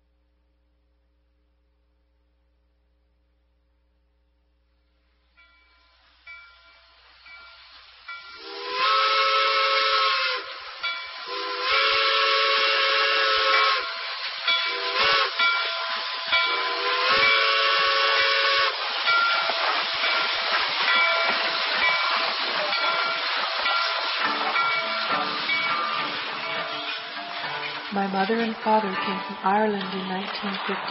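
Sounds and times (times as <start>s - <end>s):
hissing steam rushing: 5.4s - 30.8s
steam train whistle in long loud layered blasts: 8.1s - 20.3s
speech: 28.1s - 30.8s.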